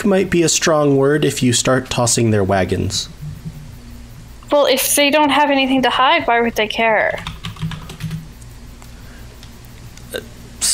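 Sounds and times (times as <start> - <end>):
speech: 0.0 - 3.3, 4.5 - 7.3
low hum: 0.0 - 10.7
typing on a computer keyboard in a chat app: 7.1 - 8.2.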